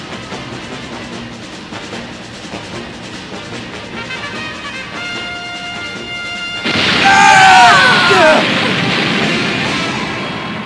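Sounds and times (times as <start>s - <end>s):
crackling debris: 6.6s - 10.6s
explosion: 6.6s - 10.6s.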